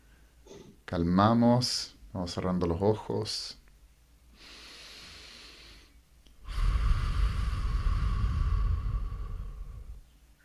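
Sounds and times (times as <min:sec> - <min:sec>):
speech: 0:00.9 - 0:03.6
deep breathing in through nose and out mouth: 0:04.3 - 0:10.1.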